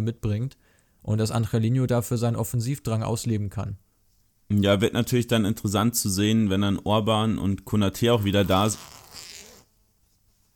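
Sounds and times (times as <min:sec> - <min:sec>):
speech: 0:00.0 - 0:03.8, 0:04.5 - 0:09.0
sweater zipper being pulled: 0:08.2 - 0:09.7.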